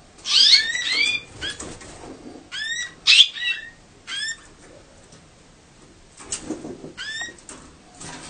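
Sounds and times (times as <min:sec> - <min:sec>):
female canary calls of short bright downward chirps: 0:00.2 - 0:01.7, 0:02.5 - 0:04.5.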